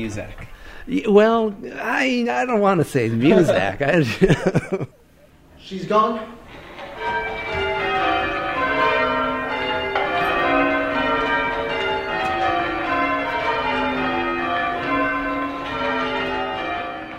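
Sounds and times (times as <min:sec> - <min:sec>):
speech: 0:00.0 - 0:05.0, 0:05.6 - 0:06.4
laughter: 0:03.1 - 0:05.4
church bells ringing: 0:06.4 - 0:17.1.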